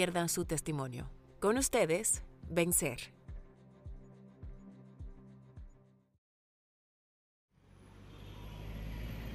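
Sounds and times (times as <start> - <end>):
speech: 0.0 - 3.2
low rumble of road traffic on a busy avenue at a bus stop: 7.6 - 9.3.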